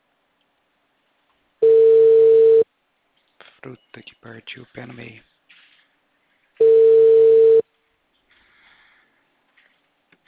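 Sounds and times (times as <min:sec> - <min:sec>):
telephone busy line tone beep: 0:01.6 - 0:02.6, 0:06.6 - 0:07.6
speech: 0:03.6 - 0:05.3.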